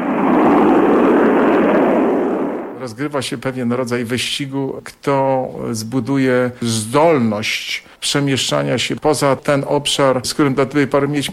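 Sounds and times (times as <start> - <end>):
rocket engine igniting at launch: 0.0 - 2.8
speech: 2.8 - 11.3.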